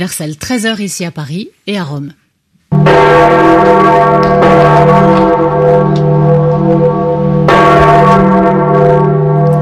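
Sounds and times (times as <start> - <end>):
speech: 0.0 - 2.2, 2.8 - 7.0
large church bells of a basilica tolling: 2.7 - 9.5.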